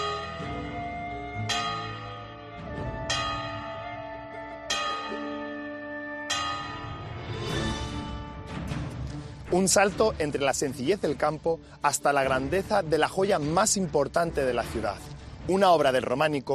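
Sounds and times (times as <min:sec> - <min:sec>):
large cathedral church bells ringing in a steady peal: 0:00.0 - 0:08.2
speech: 0:09.5 - 0:16.5.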